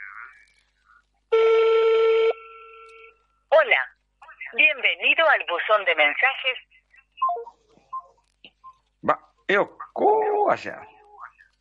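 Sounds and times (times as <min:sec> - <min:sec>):
telephone tone during an outgoing redialled call: 0:01.3 - 0:03.2
faint steady telephone tone: 0:01.3 - 0:03.5
speech: 0:04.8 - 0:07.5, 0:09.0 - 0:10.9.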